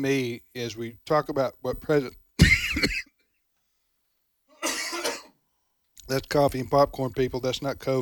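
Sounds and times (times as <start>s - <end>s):
speech: 0.0s - 2.2s, 2.8s - 3.1s, 6.1s - 8.0s
harsh breathy coughs: 2.4s - 3.2s, 4.5s - 5.4s.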